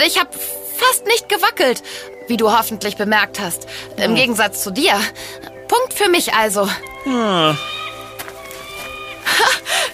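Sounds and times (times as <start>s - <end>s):
speech: 0.0s - 7.8s
falcon calling from above: 6.2s - 9.8s.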